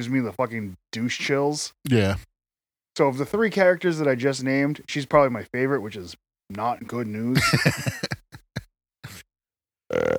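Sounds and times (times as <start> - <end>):
speech: 0.0 - 2.3, 3.0 - 8.2, 9.9 - 10.1
person grunting: 1.9 - 2.2, 9.9 - 10.1
two people burping at once: 1.9 - 2.2, 9.9 - 10.1
laughter: 7.4 - 9.2.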